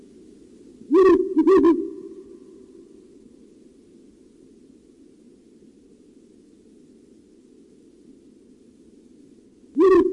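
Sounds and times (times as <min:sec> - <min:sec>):
Ural owl hooting low: 0:00.8 - 0:03.4, 0:09.7 - 0:10.1.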